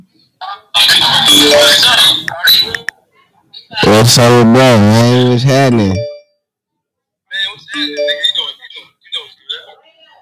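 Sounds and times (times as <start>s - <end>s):
phone ringtone playing a short electronic melody: 1.3s - 2.0s, 5.7s - 6.4s, 7.7s - 8.5s
speech: 4.0s - 6.1s.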